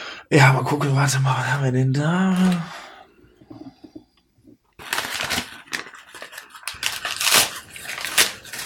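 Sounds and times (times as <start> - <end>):
speech: 0.3 - 2.8
wrapping paper roughly torn off a gift containing a DVD: 4.8 - 8.6.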